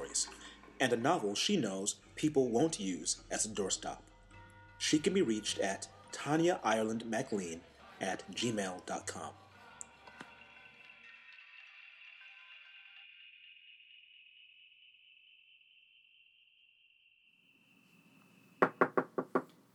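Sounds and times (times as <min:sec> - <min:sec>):
speech: 0:00.2 - 0:04.1, 0:04.8 - 0:09.4
knocking on a door: 0:18.6 - 0:19.5.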